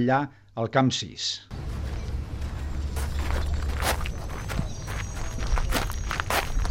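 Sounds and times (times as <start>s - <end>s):
speech: 0.0s - 1.7s
constant low rumble of noise: 1.5s - 4.9s
footsteps crunching across gravel at Camp 6: 1.5s - 6.7s.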